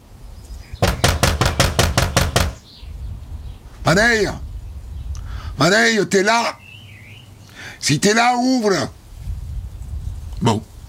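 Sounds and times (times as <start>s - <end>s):
knocking on a house door: 0.8s - 2.6s
speech: 3.9s - 4.4s, 5.6s - 6.6s, 7.8s - 9.0s, 10.4s - 10.7s.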